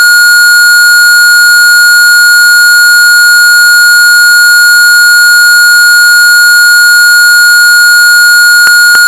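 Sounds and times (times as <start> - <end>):
TETRA pulsing radio signal: 0.0 - 9.0.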